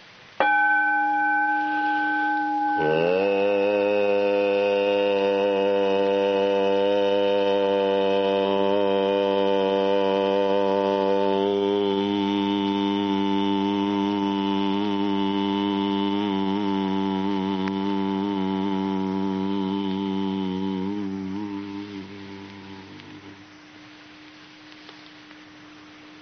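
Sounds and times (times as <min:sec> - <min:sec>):
ringing metallic gong tone: 0:00.4 - 0:04.6
person humming the tone of a gong: 0:00.5 - 0:23.6.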